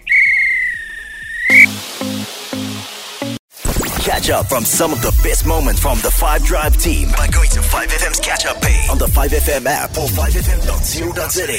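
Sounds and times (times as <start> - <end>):
referee's whistle blown to end match: 0.0 - 1.8
speech: 4.2 - 11.5.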